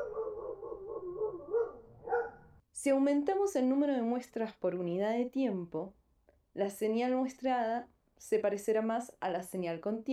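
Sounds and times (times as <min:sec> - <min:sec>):
neighbour's dog barking and whining: 0:00.0 - 0:02.6
speech: 0:02.8 - 0:06.0, 0:06.6 - 0:10.1.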